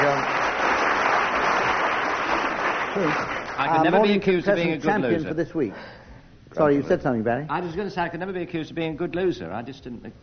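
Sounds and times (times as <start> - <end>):
studio audience applause: 0.0 - 4.0
speech: 3.0 - 10.2.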